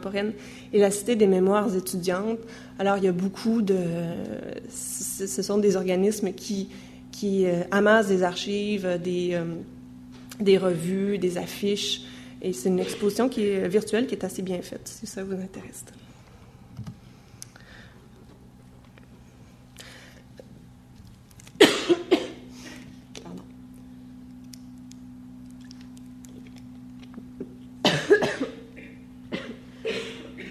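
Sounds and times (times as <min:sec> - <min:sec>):
speech: 0:00.0 - 0:09.8, 0:10.4 - 0:16.0
audience members coughing: 0:21.6 - 0:22.5, 0:27.8 - 0:30.4.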